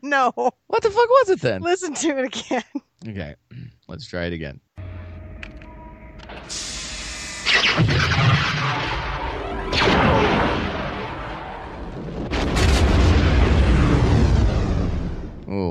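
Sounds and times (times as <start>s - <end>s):
speech: 0.0s - 4.6s, 15.5s - 15.6s
science-fiction film effect of a space station's super laser firing on a planet: 6.3s - 15.4s.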